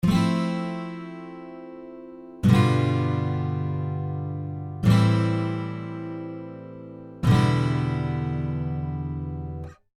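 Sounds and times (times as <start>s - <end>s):
guitar F G A E 7th chords: 0.0s - 9.8s.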